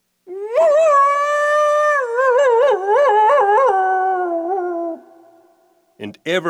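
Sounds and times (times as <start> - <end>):
coyote howling: 0.3 - 5.8
speech: 6.3 - 6.4.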